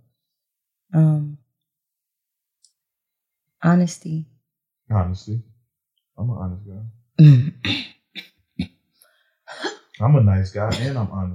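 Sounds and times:
speech: 1.0 - 1.3, 3.6 - 5.5, 6.2 - 8.3, 10.0 - 11.3
person coughing: 10.6 - 11.2.

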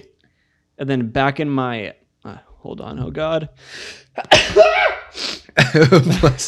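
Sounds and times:
speech: 0.8 - 6.4
loud sneeze: 3.8 - 5.5
laughter: 5.6 - 6.4.

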